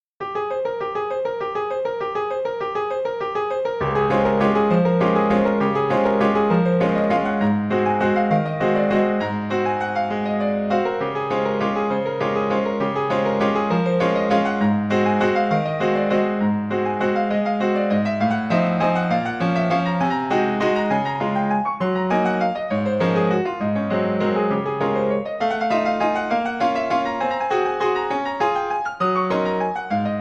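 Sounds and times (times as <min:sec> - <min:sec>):
concert grand piano: 0:00.2 - 0:30.1.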